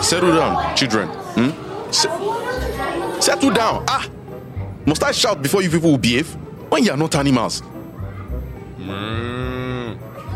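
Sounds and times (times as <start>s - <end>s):
murmur of noise: 0.0s - 10.3s
speech: 0.1s - 4.2s, 4.8s - 7.8s
person imitating a cow mooing: 8.8s - 10.0s.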